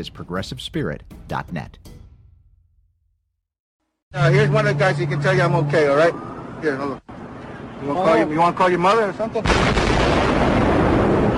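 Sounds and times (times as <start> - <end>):
speech: 0.0 - 1.9, 4.1 - 7.1, 7.8 - 10.6
explosion boom: 9.4 - 11.3.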